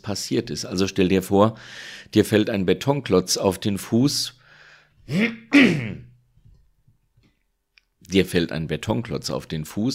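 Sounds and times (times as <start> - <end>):
speech: 0.0 - 4.4, 5.1 - 6.1, 8.1 - 9.9
person clearing throat: 5.1 - 6.2.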